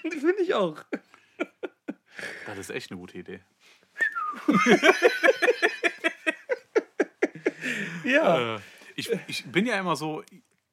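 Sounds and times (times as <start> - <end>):
speech: 0.0 - 1.1, 2.2 - 6.1, 7.6 - 10.4
person whistling in short breathy bursts: 4.0 - 4.6
laughter: 4.4 - 8.3.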